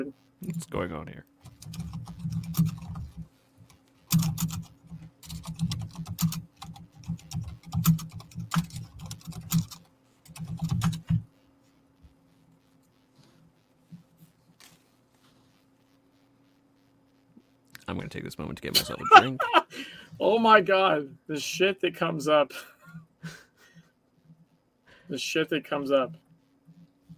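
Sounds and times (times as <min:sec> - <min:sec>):
speech: 0:00.0 - 0:02.0, 0:18.2 - 0:22.7, 0:25.1 - 0:26.2
rapid clacking of keys on a computer keyboard: 0:01.4 - 0:03.2, 0:04.1 - 0:11.2
laughter: 0:18.7 - 0:19.8.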